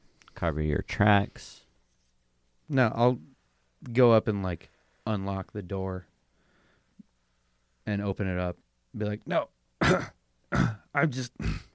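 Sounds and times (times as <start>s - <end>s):
speech: 0.4s - 1.6s, 2.7s - 6.1s, 7.9s - 11.7s
person clearing throat during a tabletop role-playing game: 9.8s - 11.7s.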